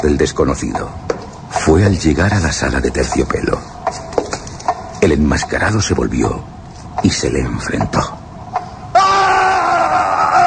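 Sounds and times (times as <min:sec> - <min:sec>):
speech: 0:00.0 - 0:04.0, 0:05.0 - 0:08.2
person screaming in a horror audio drama: 0:09.0 - 0:10.4.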